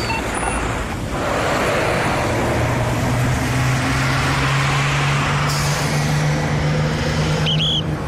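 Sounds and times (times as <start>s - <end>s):
high brake squeal: 0.0s - 0.7s, 7.4s - 8.0s
steady dense road traffic with engines and tyres rumbling: 0.0s - 8.0s.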